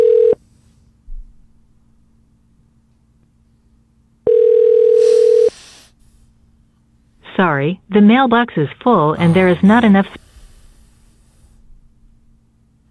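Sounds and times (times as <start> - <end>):
telephone ringback tone on a call: 0.0 - 0.4, 4.3 - 5.5
speech: 7.6 - 10.2.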